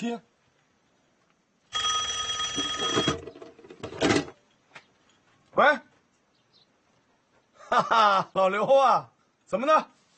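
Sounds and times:
speech: 0.0 - 0.3, 5.6 - 5.9, 7.7 - 10.0
old-style telephone bell ringing: 1.7 - 3.3
laughter: 7.6 - 8.7.

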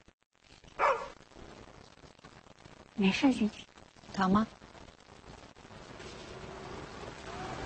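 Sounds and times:
dog barking: 0.8 - 1.2
speech: 3.0 - 4.6.

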